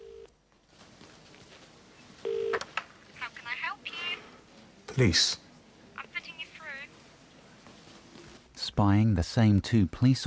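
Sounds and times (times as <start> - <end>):
tinny electronic telephone ringing tone heard through a receiver: 0.0 - 0.3, 2.2 - 2.7
speech: 5.0 - 5.4, 8.8 - 10.2.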